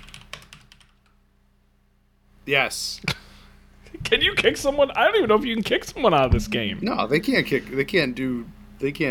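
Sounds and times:
typing on a computer keyboard during an online game: 0.0s - 1.2s
low steady hum: 0.0s - 9.0s
speech: 2.5s - 3.2s, 4.0s - 9.0s.

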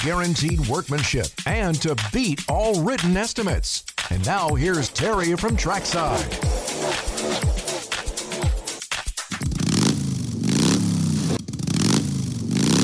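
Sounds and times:
speech: 0.0s - 7.0s
motorcycle engine revving: 5.2s - 8.8s, 9.4s - 12.8s.

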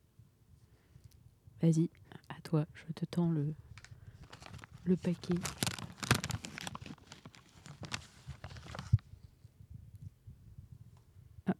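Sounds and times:
speech: 1.6s - 3.6s, 4.8s - 5.6s
soft isolated crunches of sage: 3.8s - 9.0s
dry sage leaves crackling and tearing off a sage bundle in a cellar: 4.2s - 8.8s.

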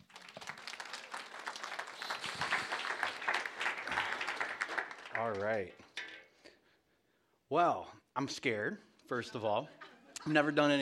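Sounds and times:
crowd applauding a man being welcomed up to preach: 0.0s - 5.8s
speech: 5.2s - 5.8s, 7.5s - 10.7s.

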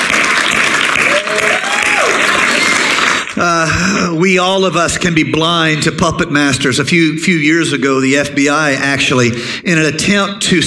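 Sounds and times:
audience applauding: 0.0s - 3.5s
speech: 4.2s - 10.6s.

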